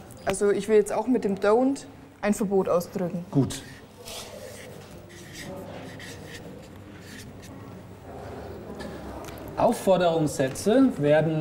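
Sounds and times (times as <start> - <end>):
speech: 0.2 - 4.3, 9.6 - 11.3
pen writing on a word card: 4.0 - 7.6.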